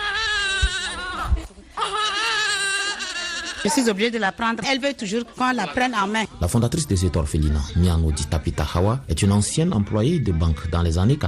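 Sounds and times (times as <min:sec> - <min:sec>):
month-old baby girl wailing at an orphanage: 0:00.0 - 0:04.2
speech: 0:03.6 - 0:11.2.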